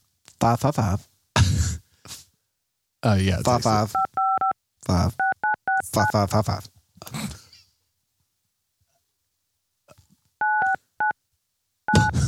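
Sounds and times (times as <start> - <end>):
speech: 0.4 - 1.1, 3.0 - 4.1, 4.9 - 5.2, 5.9 - 7.2
touch-tone phone keypad beeps dialing an automated survey line: 4.0 - 4.5, 10.4 - 11.1, 11.9 - 12.1.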